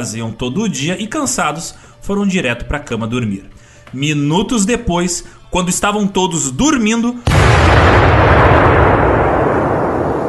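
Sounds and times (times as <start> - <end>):
speech: 0.0 - 8.4
bomb explosion rumble: 7.2 - 10.2.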